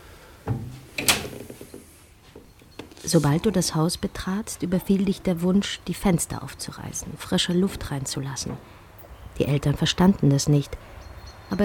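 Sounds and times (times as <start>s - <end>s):
dull wooden thump of a door opening: 0.5s - 1.3s
soft door creak: 0.5s - 3.4s
speech: 3.1s - 8.8s, 9.4s - 11.6s.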